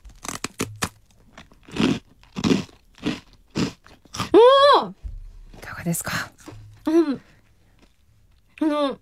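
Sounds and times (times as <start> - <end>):
biting and crunching katsu-don flavoured rice crackers: 0.0 - 4.4
speech: 5.8 - 6.3, 6.9 - 7.3.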